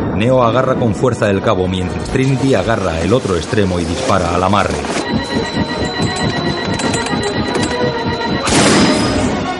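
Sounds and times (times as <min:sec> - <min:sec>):
speech: 0:00.2 - 0:06.4
helicopter rotor thumping with a steady whine while falling: 0:04.7 - 0:09.4.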